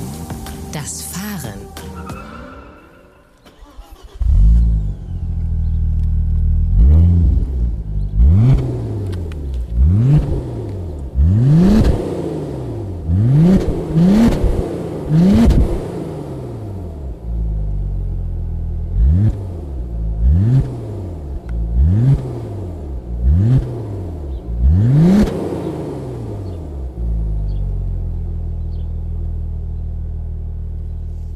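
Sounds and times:
Audi RS 4 B5 engine revving: 0:00.0 - 0:01.1, 0:01.8 - 0:31.3
speech: 0:00.7 - 0:02.1.

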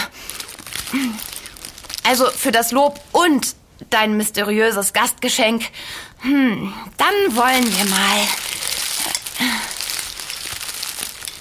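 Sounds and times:
bag of tomatoes crinkling while being unwrapped: 0:00.1 - 0:03.2, 0:07.1 - 0:11.3
speech: 0:00.9 - 0:01.3, 0:02.1 - 0:08.4.

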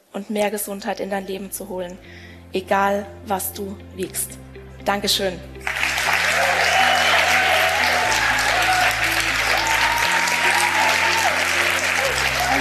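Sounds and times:
speech: 0:00.2 - 0:05.6
audience applause: 0:05.6 - 0:12.5.

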